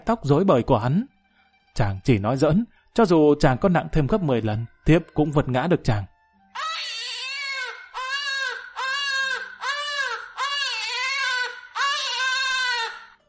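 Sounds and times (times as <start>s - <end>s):
speech: 0.1s - 1.1s, 1.8s - 6.7s
two babies crying loudly: 6.6s - 13.2s.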